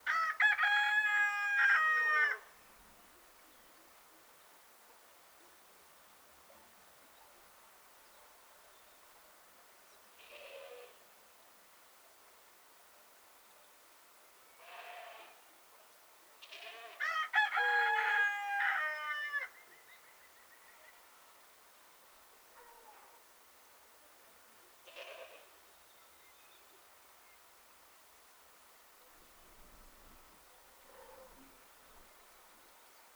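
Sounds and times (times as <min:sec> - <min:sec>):
rooster crowing: 0:00.1 - 0:02.5, 0:16.9 - 0:19.6
soft breeze: 0:25.9 - 0:33.1.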